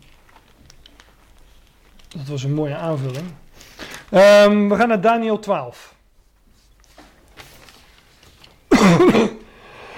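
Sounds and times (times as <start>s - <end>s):
speech: 2.2s - 3.4s, 4.1s - 6.0s
single short harsh cough: 8.7s - 9.5s.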